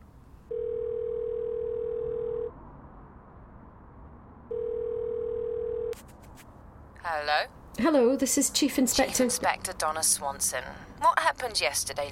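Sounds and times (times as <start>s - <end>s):
telephone ringing tone on an outgoing call: 0.5s - 2.5s, 4.5s - 6.0s
speech: 7.1s - 12.0s.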